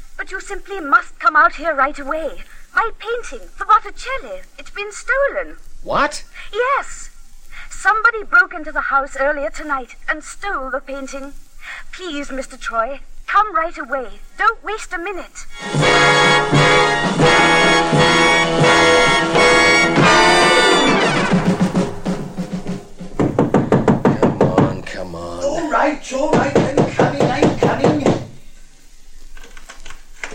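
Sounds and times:
speech: 0.2 - 7.1, 7.8 - 17.3, 26.1 - 26.6
dramatic music: 15.6 - 23.2
rapid heavy knocking on a door: 22.7 - 24.8, 26.3 - 28.4.

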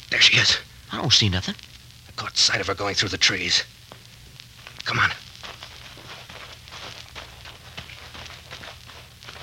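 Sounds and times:
low constant rumble: 0.0 - 9.4
speech: 0.2 - 3.8, 4.8 - 5.2
footsteps walking with soft crunching thuds: 3.9 - 9.4.

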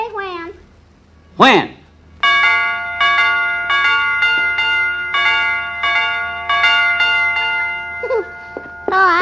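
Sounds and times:
speech: 1.4 - 1.8
doorbell chime ringing: 2.2 - 9.2.

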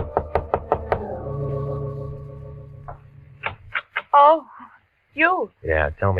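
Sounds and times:
firm knocks on a door: 0.0 - 1.0
lingering low hum: 0.0 - 3.8
speech: 5.2 - 6.1.

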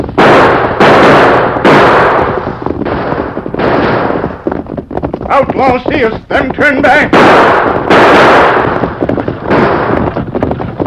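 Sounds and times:
gunshots fired during a holdup by horsemen on a hillside: 0.0 - 10.8
speech: 5.4 - 8.7.

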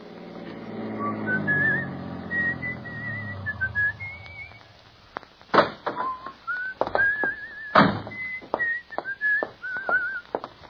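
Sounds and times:
man whistling a cheerful melody at a tavern: 1.0 - 4.6, 6.0 - 10.3.

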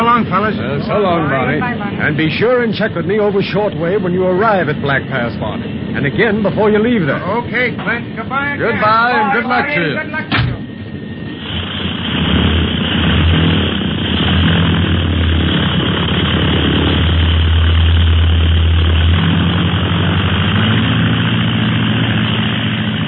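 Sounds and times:
propeller airplane engine roaring on takeoff: 0.0 - 23.0
speech: 0.2 - 10.4.

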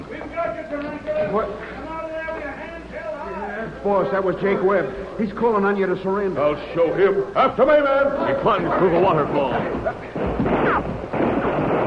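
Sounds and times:
speech: 0.6 - 1.8, 3.8 - 10.5
gunfire from many six-shooters at night beside a waterfall and creek: 10.2 - 11.8.

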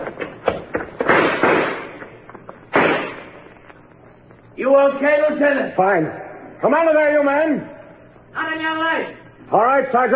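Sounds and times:
gunshots fired as covering fire toward a loading platform: 1.0 - 2.0, 2.7 - 3.5
speech: 4.6 - 7.7, 8.4 - 10.1.

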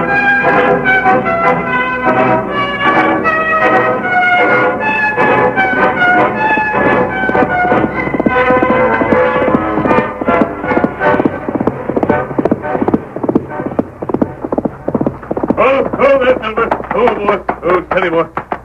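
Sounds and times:
sustained tonal sounds: 0.0 - 17.6
speech: 0.1 - 2.4
horse hooves clip-clopping: 5.2 - 18.6.

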